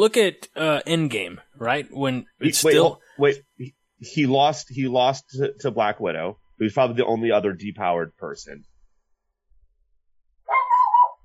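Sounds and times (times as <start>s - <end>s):
speech: 0.0s - 8.7s
dog giving a drawn-out wavering bark: 10.5s - 11.2s.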